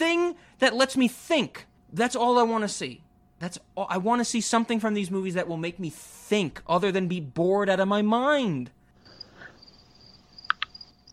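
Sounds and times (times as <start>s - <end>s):
speech: 0.6s - 8.8s
crickets chirping through open window: 9.0s - 11.1s
sharp clicks: 10.4s - 10.8s.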